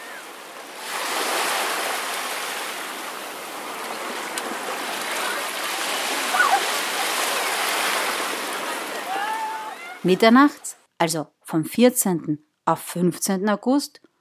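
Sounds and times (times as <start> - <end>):
surf washing onto a beach in Italy: 0.0 - 10.1
speech: 10.0 - 14.1.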